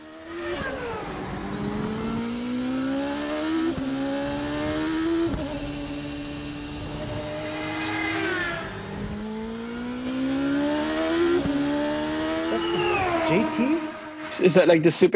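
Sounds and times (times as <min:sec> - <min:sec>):
IndyCar racing engine accelerating with quick upshifts: 0:00.0 - 0:15.1
speech: 0:14.4 - 0:15.1.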